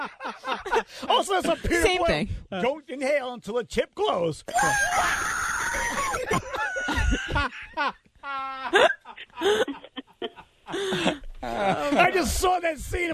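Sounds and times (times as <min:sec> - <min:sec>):
laughter: 0:00.0 - 0:01.7, 0:05.6 - 0:12.3
speech: 0:00.1 - 0:09.6, 0:10.7 - 0:13.1
man screaming and yelping in a film clip: 0:04.5 - 0:06.2.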